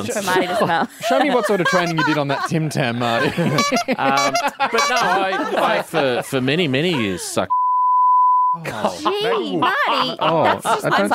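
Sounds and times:
speech: 0.0 - 7.6, 8.5 - 11.1
people chuckling: 0.2 - 7.4, 8.6 - 11.1
high censor bleep tone: 7.5 - 8.6.

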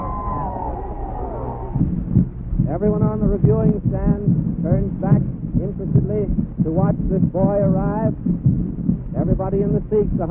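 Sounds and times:
large crowd cheering: 0.0 - 1.9
high wavering tone sliding downward: 0.0 - 2.3
speech: 2.7 - 8.5, 9.2 - 10.2.

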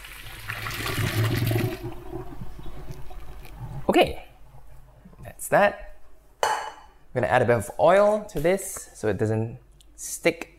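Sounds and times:
hot pasta water poured through a colander into a sink: 0.0 - 3.9
speech: 4.0 - 4.2, 5.5 - 5.9, 7.1 - 10.5.

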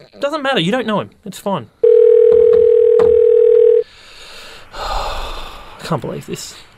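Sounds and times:
speech: 0.0 - 1.8, 5.9 - 6.7
telephone dial tone while placing a call: 1.8 - 3.8.

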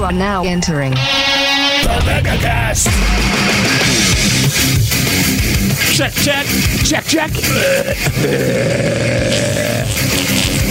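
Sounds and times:
speech: 0.0 - 1.2, 1.8 - 10.5
long loud belch: 7.2 - 10.7.

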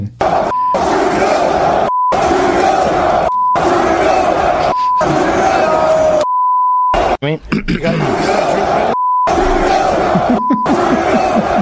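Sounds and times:
large arena crowd chanting at a UFC event: 0.2 - 6.3, 7.0 - 7.2, 7.8 - 11.5
censor bleeps: 0.5 - 0.8, 1.9 - 2.2, 3.3 - 3.6, 4.7 - 5.2, 6.2 - 7.0, 9.0 - 9.3
laughter: 3.6 - 6.0, 7.5 - 11.5.

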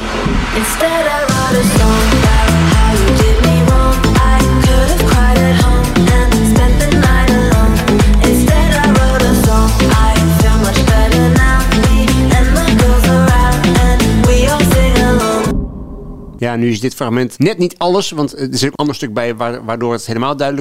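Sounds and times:
pop song with female vocals: 0.0 - 15.6
speech: 0.6 - 2.1, 16.6 - 20.5.

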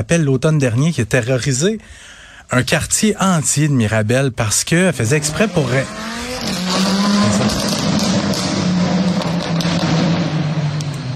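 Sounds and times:
speech: 0.0 - 7.6
car engine revving hard: 5.0 - 11.1.

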